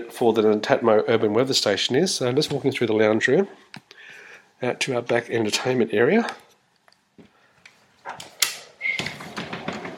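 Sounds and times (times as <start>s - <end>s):
speech: 0.0s - 3.8s, 4.6s - 6.4s
sliding glass door rattling along its track: 9.2s - 9.9s.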